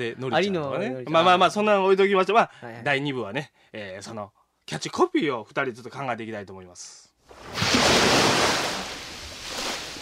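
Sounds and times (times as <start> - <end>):
speech: 0.0 - 8.3
big ocean waves crashing: 7.3 - 9.9.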